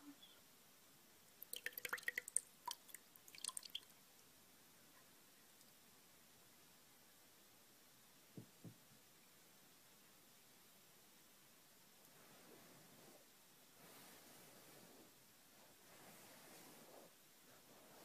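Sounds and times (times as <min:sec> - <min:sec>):
quiet hum: 0:00.0 - 0:18.0
water dripping and splashing while rinsing hair: 0:01.4 - 0:04.0.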